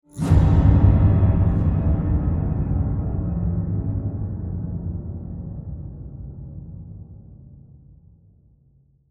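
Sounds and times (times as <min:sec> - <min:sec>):
short scary horror string tones: 0:00.2 - 0:07.1.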